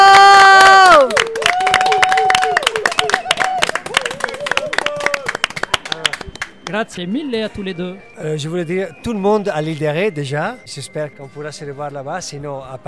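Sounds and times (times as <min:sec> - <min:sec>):
small group applauding: 0:00.0 - 0:06.9
speech: 0:06.7 - 0:12.8.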